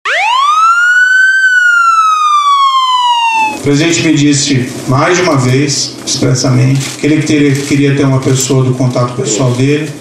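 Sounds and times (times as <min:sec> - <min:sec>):
police siren wailing: 0:00.0 - 0:04.1
speech: 0:03.7 - 0:09.9.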